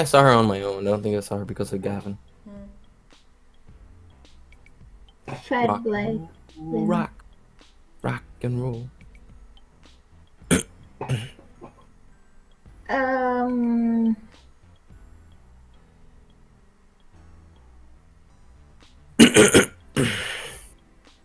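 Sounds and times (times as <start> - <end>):
speech: 0.0 - 2.3, 5.3 - 7.2, 8.0 - 9.0, 10.5 - 11.4, 12.9 - 14.3, 19.2 - 20.2
person clearing throat: 5.3 - 5.8, 10.5 - 11.8, 19.2 - 20.7
person groaning: 5.3 - 5.8, 10.5 - 11.3, 19.2 - 20.6.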